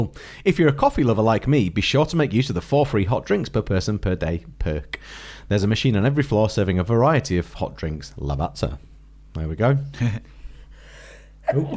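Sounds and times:
speech: 0:00.0 - 0:10.4, 0:11.4 - 0:11.7
breathy inhale: 0:00.2 - 0:00.4, 0:05.0 - 0:05.5, 0:10.3 - 0:11.4
person sneezing: 0:11.4 - 0:11.7.

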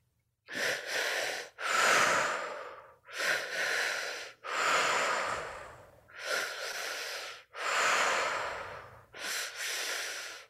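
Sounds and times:
slow deep breaths in and out through the mouth: 0:00.5 - 0:10.4.

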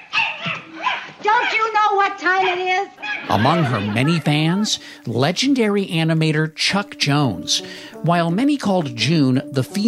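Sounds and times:
woman's voice imitating a dog barking: 0:00.2 - 0:04.0
speech: 0:02.5 - 0:09.8
laughter: 0:03.2 - 0:04.8.

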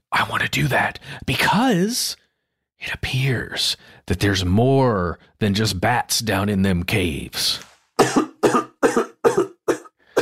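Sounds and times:
speech: 0:00.3 - 0:02.2, 0:02.8 - 0:08.2
harsh rasping coughs: 0:08.0 - 0:10.2.

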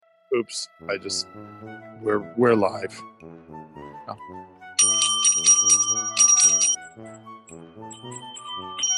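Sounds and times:
speech: 0:00.3 - 0:06.2, 0:06.9 - 0:08.9
bicycle bell ringing in bright metallic trills: 0:04.8 - 0:06.8, 0:07.9 - 0:08.9.

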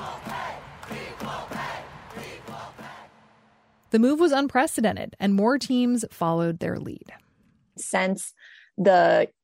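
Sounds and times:
large stadium crowd of soccer fans chanting in unison: 0:00.0 - 0:03.8
speech: 0:03.9 - 0:07.2, 0:07.8 - 0:09.4.

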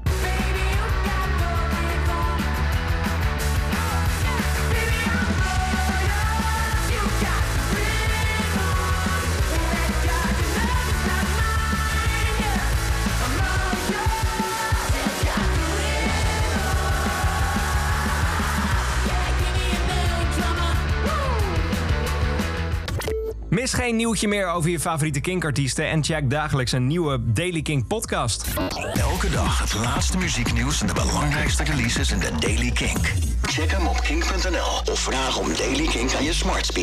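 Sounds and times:
British rock band's full-band rock song: 0:00.0 - 0:22.9, 0:28.9 - 0:33.4
speech: 0:23.7 - 0:36.8.

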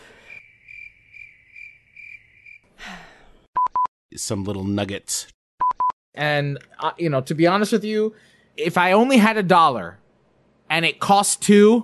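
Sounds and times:
cricket chirping: 0:00.0 - 0:02.6
speech: 0:04.2 - 0:05.4, 0:06.2 - 0:10.0, 0:10.7 - 0:11.8.

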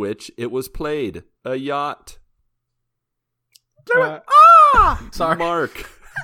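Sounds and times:
speech: 0:00.0 - 0:02.2, 0:03.8 - 0:06.2
person imitating a distressed eagle screech: 0:04.2 - 0:05.0.

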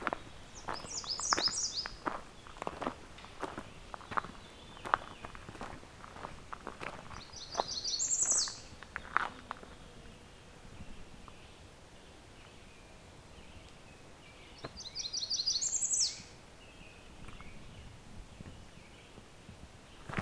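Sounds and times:
footsteps crunching through leaves: 0:00.0 - 0:09.4
American redstart singing, mimicking a Blackburnian warbler: 0:00.0 - 0:19.3.

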